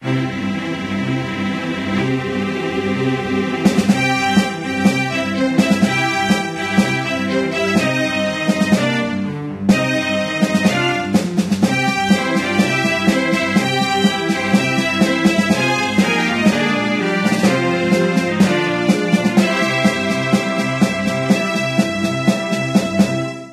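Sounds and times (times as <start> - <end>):
contest background music: 0.0 - 23.5.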